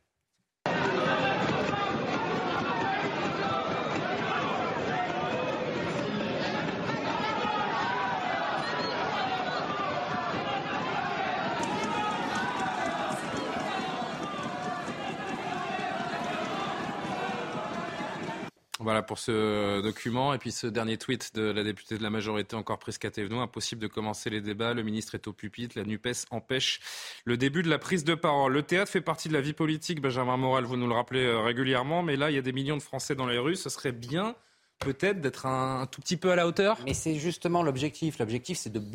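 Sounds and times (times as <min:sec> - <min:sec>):
many voices shouting and heckling in a parliament chamber: 0:00.6 - 0:18.5
speech: 0:19.0 - 0:38.9.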